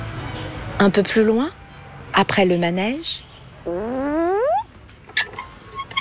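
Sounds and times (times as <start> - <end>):
speech: 0.8 - 1.6, 2.2 - 3.9
swing creaking upward in pitch: 3.7 - 6.0.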